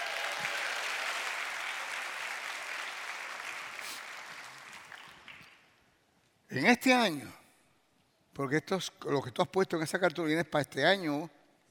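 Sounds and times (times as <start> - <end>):
audience applause: 0.0 - 5.5
speech: 6.5 - 7.4, 8.4 - 11.6.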